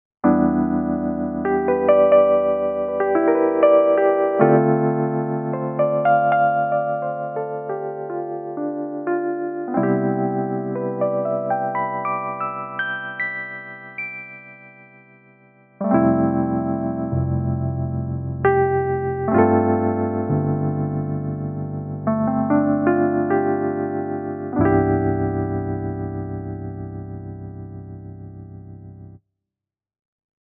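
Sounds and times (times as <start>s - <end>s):
Casio PX-S5000 electric piano: 0.2s - 29.2s.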